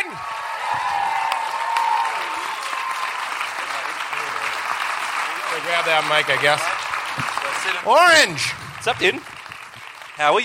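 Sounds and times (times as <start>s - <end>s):
faint whoops: 0.0s - 3.3s
crowd applauding: 0.0s - 10.4s
speech: 5.6s - 9.3s, 10.2s - 10.4s.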